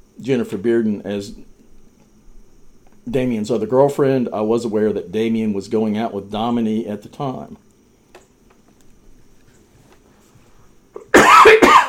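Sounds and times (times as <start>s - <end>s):
speech: 0.2s - 1.5s, 3.1s - 7.6s
person coughing: 11.0s - 11.8s.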